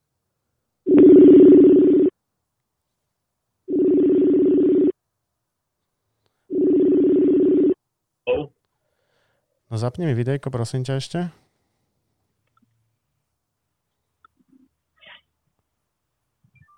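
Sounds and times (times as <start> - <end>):
ringback tones from an outgoing phone call: 0.9 - 2.1, 3.7 - 4.9, 6.5 - 7.8
speech: 9.8 - 11.4.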